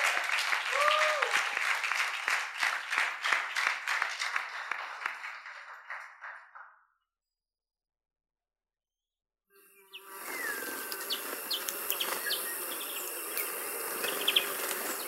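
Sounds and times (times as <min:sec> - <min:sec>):
audience applauding to welcome a speaker: 0:00.0 - 0:06.7, 0:10.1 - 0:15.0.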